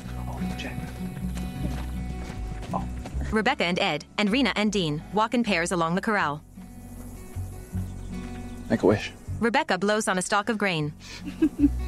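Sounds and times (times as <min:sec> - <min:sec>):
horse hoofbeats on soft ground in a corral: 0:00.0 - 0:08.7
speech: 0:00.4 - 0:01.8, 0:02.7 - 0:06.5, 0:08.7 - 0:11.8
laughter: 0:11.1 - 0:11.8.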